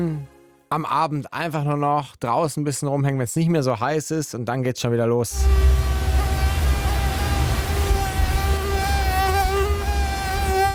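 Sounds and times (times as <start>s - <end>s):
speech: 0.0s - 5.8s
mosquito whining while hovering: 5.3s - 10.7s.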